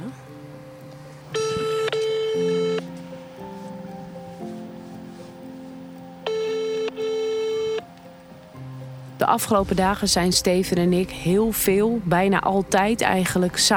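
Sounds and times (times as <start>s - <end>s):
mobile phone ringback tone of a call to the coast guard: 1.3s - 8.5s
speech: 9.2s - 13.7s.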